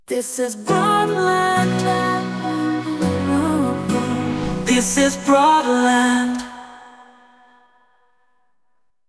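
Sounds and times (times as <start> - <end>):
person singing: 0.1 - 7.2.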